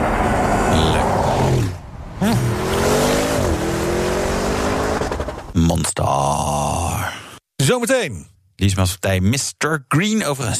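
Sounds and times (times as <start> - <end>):
SUV engine revving: 0.0 - 5.5
speech: 2.2 - 2.6, 5.6 - 7.1, 7.7 - 10.5.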